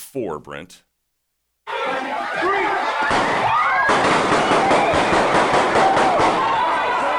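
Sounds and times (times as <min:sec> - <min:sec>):
speech: 0:00.1 - 0:00.9, 0:01.8 - 0:04.9
noisy crowd with people shouting and talking: 0:01.6 - 0:07.1
gunshots fired at a back-to-school event: 0:03.0 - 0:06.8.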